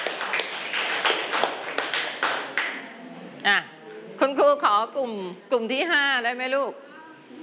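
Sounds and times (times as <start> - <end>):
children clapping hands in a classroom: 0.0 - 2.9
speech: 4.8 - 6.9.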